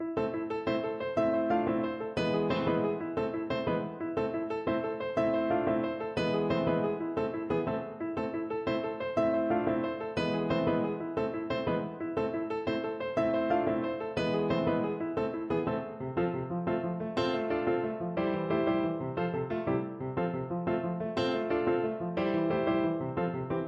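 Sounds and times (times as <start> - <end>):
piano piece: 0.0 - 23.6.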